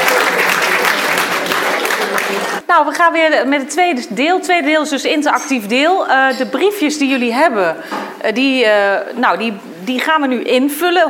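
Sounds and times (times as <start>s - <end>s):
audience applause: 0.0s - 2.6s
speech: 2.7s - 11.0s.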